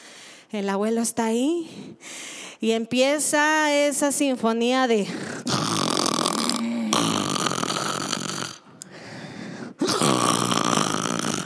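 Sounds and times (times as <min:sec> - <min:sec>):
speech: 0:00.5 - 0:05.4
person imitating the snoring of a grandfather asleep in an armchair: 0:05.3 - 0:08.7, 0:09.8 - 0:11.4.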